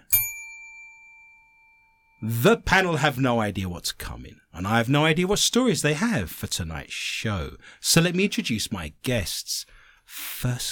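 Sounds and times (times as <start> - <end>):
single bright metallic bell strike: 0.0 - 2.5
speech: 2.2 - 10.7.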